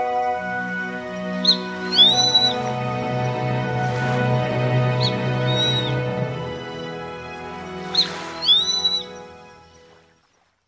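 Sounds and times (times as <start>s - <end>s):
sustained musical tones: 0.0s - 10.1s
grey-faced buzzard calling on Kamishima island in Mie Prefecture Japan: 1.3s - 3.0s, 4.8s - 6.3s, 7.8s - 9.3s.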